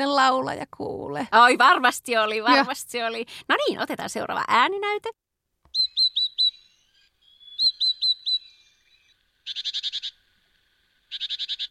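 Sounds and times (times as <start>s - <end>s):
speech: 0.0s - 5.2s
small mountain bird chirping: 5.7s - 11.6s.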